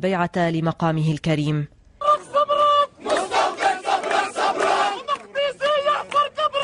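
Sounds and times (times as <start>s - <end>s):
speech: 0.0s - 1.8s
large crowd chanting slogans in unison: 2.0s - 6.6s.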